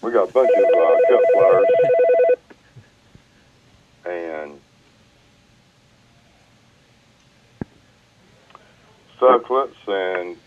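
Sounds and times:
speech: 0:00.0 - 0:02.2, 0:09.2 - 0:10.4
faint noise: 0:00.0 - 0:10.4
telephone electronic tone burst: 0:00.4 - 0:02.4.

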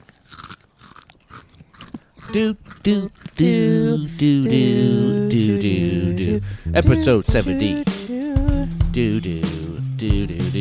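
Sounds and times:
crisp bites of a potato chip: 0:00.0 - 0:04.6
speech: 0:02.3 - 0:05.8, 0:06.4 - 0:08.0, 0:09.0 - 0:10.5.

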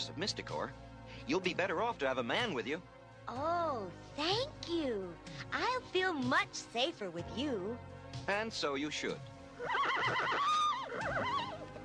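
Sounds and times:
speech: 0:00.0 - 0:11.4
ridden horse whinnying: 0:09.6 - 0:11.8.

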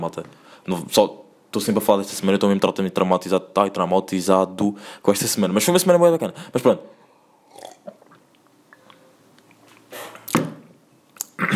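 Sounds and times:
speech: 0:00.0 - 0:07.0
louder gulp: 0:07.4 - 0:08.2, 0:11.2 - 0:11.5
person sipping water: 0:07.4 - 0:10.2
soft wet mouth sounds and clicks: 0:07.4 - 0:10.3, 0:11.1 - 0:11.5.

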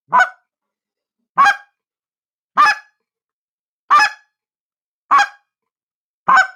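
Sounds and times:
slow clucks blown on a goose call: 0:01.4 - 0:01.7, 0:03.9 - 0:04.2, 0:05.1 - 0:05.4, 0:06.3 - 0:06.5.

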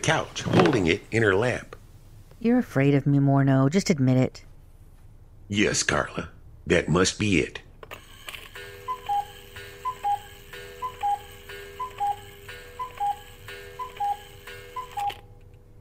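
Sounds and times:
speech: 0:00.0 - 0:01.7, 0:02.4 - 0:04.5, 0:05.5 - 0:07.6
faint constant hum: 0:00.0 - 0:15.7
clock ticking: 0:08.6 - 0:15.2.

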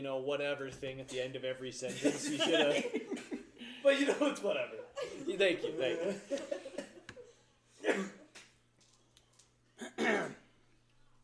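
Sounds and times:
speech: 0:00.0 - 0:06.6, 0:07.9 - 0:08.2
laughter: 0:01.9 - 0:07.4
person coughing: 0:07.8 - 0:08.3, 0:09.8 - 0:10.5.

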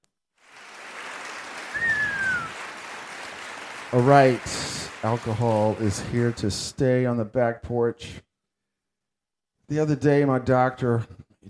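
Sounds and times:
crowd applauding: 0:00.4 - 0:06.6
short whistle: 0:01.7 - 0:02.6
speech: 0:03.9 - 0:08.3, 0:09.7 - 0:11.4.

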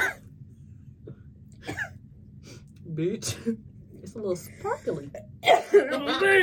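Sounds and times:
person coughing after something went down the wrong pipe: 0:00.0 - 0:00.2, 0:01.6 - 0:02.0, 0:05.4 - 0:05.9
speech: 0:03.0 - 0:06.4.

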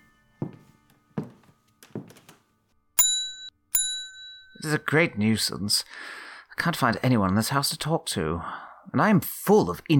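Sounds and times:
heavy footsteps of a man on a floor: 0:00.4 - 0:02.6
small servant bell on a desk being struck: 0:03.0 - 0:04.9
speech: 0:04.6 - 0:09.9.

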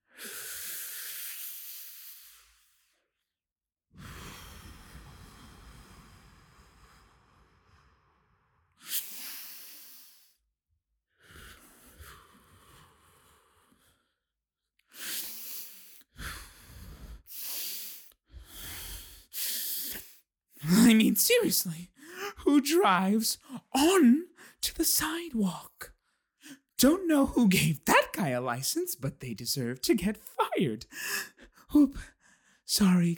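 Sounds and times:
speech: 0:21.1 - 0:21.9, 0:22.5 - 0:25.7, 0:26.8 - 0:32.1, 0:32.7 - 0:33.1
soft exhalations: 0:30.9 - 0:32.4.

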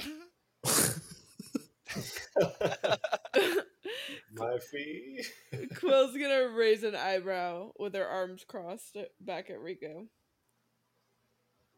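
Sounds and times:
person clearing throat: 0:00.0 - 0:03.6
laughter: 0:01.9 - 0:03.6, 0:04.4 - 0:05.9
speech: 0:02.0 - 0:02.8, 0:04.6 - 0:10.2.

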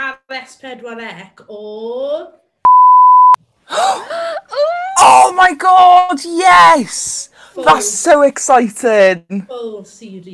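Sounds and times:
speech: 0:00.3 - 0:02.4, 0:03.7 - 0:10.3
censor bleep over spoken words: 0:02.7 - 0:03.4.

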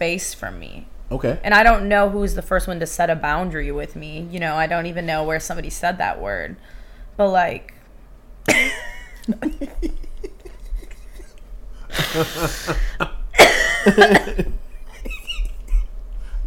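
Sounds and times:
speech: 0:00.0 - 0:07.8, 0:08.5 - 0:10.0, 0:12.1 - 0:13.2, 0:13.8 - 0:14.6
dry coughing fit: 0:08.5 - 0:08.9, 0:10.4 - 0:15.8
laughter: 0:08.5 - 0:15.9
raspy throat-clearing: 0:11.9 - 0:14.6.

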